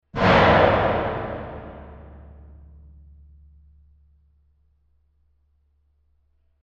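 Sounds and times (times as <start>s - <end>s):
heavy metal hit: 0.1s - 2.8s.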